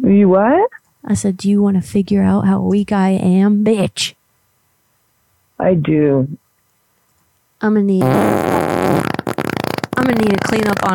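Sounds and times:
speech: 0:00.1 - 0:04.2, 0:05.6 - 0:06.4, 0:07.6 - 0:08.8, 0:10.0 - 0:10.9
loud fart: 0:08.0 - 0:10.9.

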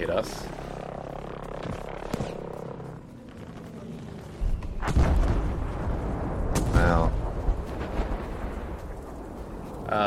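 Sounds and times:
speech: 0:00.0 - 0:00.6
bomb explosion in a video game: 0:04.8 - 0:08.9.

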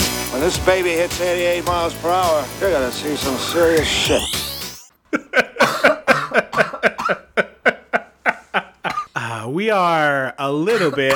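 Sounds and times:
speech: 0:00.4 - 0:04.4, 0:09.6 - 0:11.1
laughter: 0:05.1 - 0:09.1
person coughing: 0:05.2 - 0:07.3, 0:08.9 - 0:09.1, 0:10.7 - 0:11.1.

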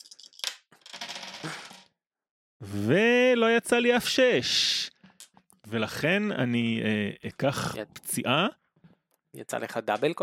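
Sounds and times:
three dice rolling on a hard surface: 0:00.0 - 0:01.9
speech: 0:01.4 - 0:01.6, 0:02.6 - 0:04.8, 0:05.7 - 0:08.6, 0:09.4 - 0:10.2.

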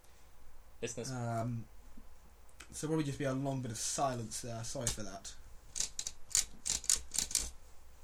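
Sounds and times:
speech: 0:00.8 - 0:01.8, 0:02.7 - 0:05.4
typewriter keys clacking, played like a musical instrument: 0:05.8 - 0:07.5.

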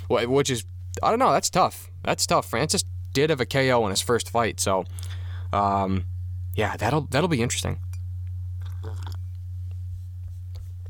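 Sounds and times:
steady low electrical hum: 0:00.0 - 0:10.8
speech: 0:00.1 - 0:07.8
mouth and swallow clicks: 0:08.6 - 0:09.3
person sipping coffee: 0:08.6 - 0:09.4.

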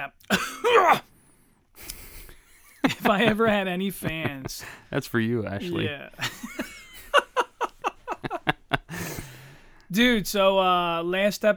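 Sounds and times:
throat clearing at the microphone: 0:00.2 - 0:01.1
sick person coughing into a microphone: 0:00.3 - 0:01.1, 0:05.6 - 0:05.9
laughter: 0:02.3 - 0:09.6
speech: 0:03.0 - 0:06.7, 0:09.9 - 0:11.5.

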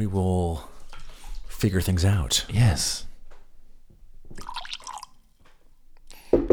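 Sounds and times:
speech: 0:00.0 - 0:00.7, 0:01.6 - 0:03.1
whiskey dripping: 0:00.6 - 0:01.6, 0:04.2 - 0:06.5
whiskey splashing into a glass: 0:04.4 - 0:05.3.

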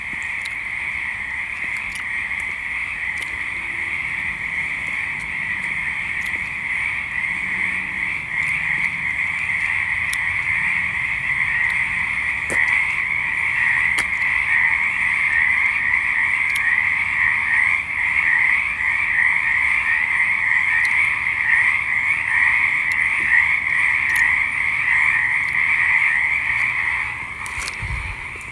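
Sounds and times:
faint ticks: 0:00.0 - 0:07.6, 0:08.3 - 0:10.8, 0:11.4 - 0:14.7, 0:16.2 - 0:16.8, 0:20.7 - 0:21.8, 0:22.4 - 0:28.5
frogs trilling chorus in a pond: 0:00.0 - 0:28.5.

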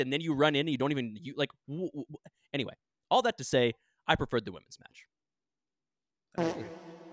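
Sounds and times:
speech: 0:00.0 - 0:05.1, 0:06.4 - 0:06.9
fart: 0:06.4 - 0:07.1.

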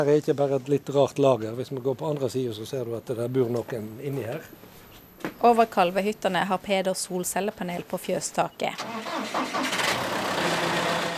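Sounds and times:
speech: 0:00.0 - 0:04.8, 0:05.4 - 0:09.6
diesel tractor engine on a farm cranking and idling: 0:08.8 - 0:11.1.

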